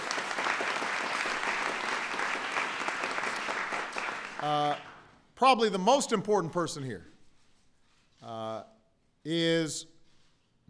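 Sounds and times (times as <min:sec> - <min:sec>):
large audience applauding: 0:00.0 - 0:05.0
speech: 0:04.4 - 0:07.1, 0:09.2 - 0:09.9.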